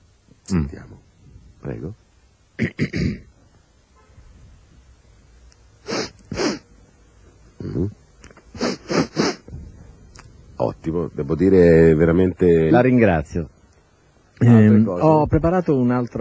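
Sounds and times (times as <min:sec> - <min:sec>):
speech: 0:00.5 - 0:01.0, 0:01.6 - 0:02.0, 0:02.6 - 0:03.3, 0:10.8 - 0:13.6, 0:14.4 - 0:16.1
man imitating an 18-year-old with a cold sniffing: 0:02.6 - 0:03.3, 0:05.8 - 0:06.7, 0:07.6 - 0:09.7.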